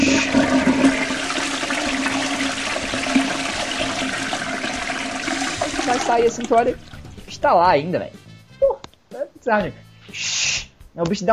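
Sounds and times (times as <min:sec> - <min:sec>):
toilet flushing: 0:00.0 - 0:07.3
speech: 0:06.1 - 0:08.2, 0:09.4 - 0:10.3, 0:11.0 - 0:11.3.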